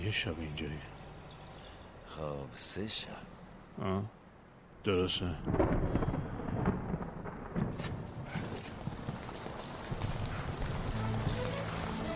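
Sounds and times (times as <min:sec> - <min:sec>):
speech: 0:00.0 - 0:01.0, 0:02.1 - 0:04.2, 0:04.8 - 0:06.0
steady dense rain: 0:04.9 - 0:12.1
low rumbling thunder: 0:05.4 - 0:11.0
faint hoof-like clopping: 0:08.2 - 0:12.1.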